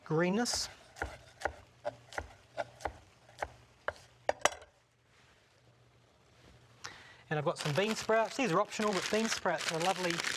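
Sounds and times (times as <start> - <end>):
speech: 0.1 - 1.2, 7.3 - 10.3
knife chopping baby spinach on a board: 0.5 - 4.1.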